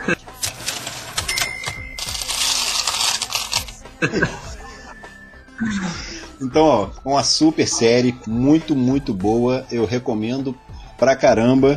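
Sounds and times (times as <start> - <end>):
speech: 0.1 - 0.3, 4.0 - 4.5, 5.6 - 11.7
cash register bell ringing: 0.6 - 3.2
laughter: 3.9 - 5.0.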